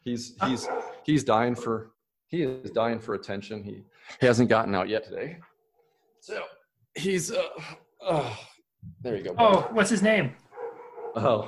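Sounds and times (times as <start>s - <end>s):
speech: 0.0s - 5.5s, 6.2s - 10.4s, 11.1s - 11.4s
dogs barking: 0.4s - 1.1s, 9.4s - 11.4s.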